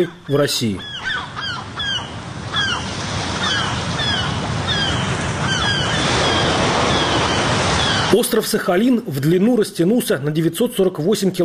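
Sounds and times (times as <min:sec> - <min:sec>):
speech: 0:00.0 - 0:01.4, 0:08.1 - 0:11.4
seabird calls: 0:00.0 - 0:08.4
sea waves and surf: 0:00.5 - 0:09.2.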